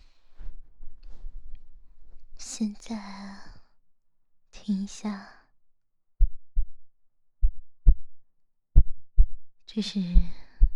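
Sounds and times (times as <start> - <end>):
speech: 2.5 - 3.5, 4.7 - 5.4, 9.8 - 10.4
low heartbeat thumps: 6.2 - 10.7.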